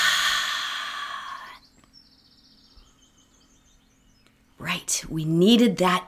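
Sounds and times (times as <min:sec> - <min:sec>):
long breathy exhale after a held deep breath: 0:00.0 - 0:01.6
speech: 0:04.9 - 0:06.0.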